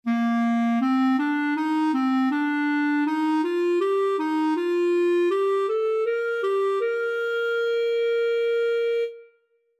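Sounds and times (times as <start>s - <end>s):
clarinet playing rising interval sequence: 0.1s - 9.3s.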